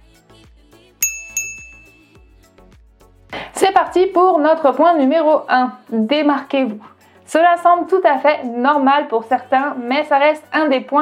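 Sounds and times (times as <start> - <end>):
soft musical background: 0.0 - 11.0
notification chime bell dings: 1.0 - 2.2
speech: 3.8 - 11.0.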